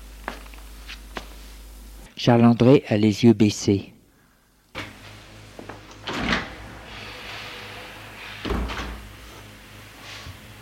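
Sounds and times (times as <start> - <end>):
speech: 2.2 - 3.9
door creaking and clunking open: 5.9 - 9.2.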